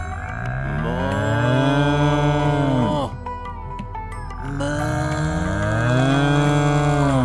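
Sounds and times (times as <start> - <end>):
person in cow yoga pose mooing like a cow: 0.2 - 3.2, 4.4 - 7.2.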